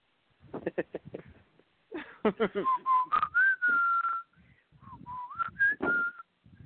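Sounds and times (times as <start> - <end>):
person whistling a TV theme tune: 2.6 - 6.2.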